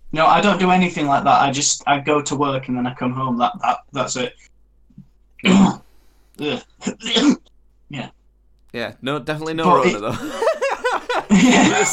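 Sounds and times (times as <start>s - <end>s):
speech: 0.1s - 4.5s, 5.4s - 5.8s, 6.4s - 10.6s, 11.3s - 11.9s
rough hacking coughs: 6.4s - 7.5s, 11.3s - 11.9s
laughter: 9.8s - 11.9s.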